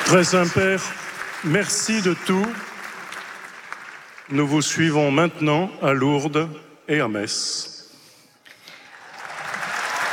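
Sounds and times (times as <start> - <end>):
crowd applause greeting the pope: 0.0 - 4.4, 8.8 - 10.1
speech: 0.1 - 2.7, 4.3 - 7.7.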